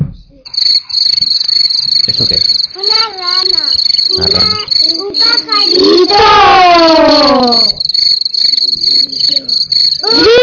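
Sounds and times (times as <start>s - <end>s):
cricket chirping: 0.4s - 10.4s
speech: 0.6s - 7.8s, 9.0s - 10.4s.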